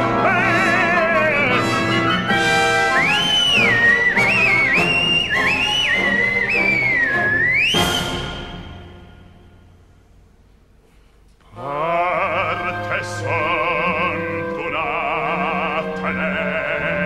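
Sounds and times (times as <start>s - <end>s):
dense orchestral music: 0.0s - 10.2s, 11.6s - 17.0s
shrill whistle blasts: 1.2s - 9.3s.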